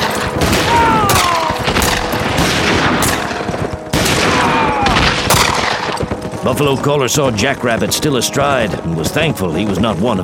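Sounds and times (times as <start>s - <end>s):
rifle volley gunfire from kneeling riflemen shooting at charging mounted warriors: 0.0s - 6.3s
sharp heavy rifle gunshot cracks: 0.4s - 6.0s
speech: 6.5s - 10.2s.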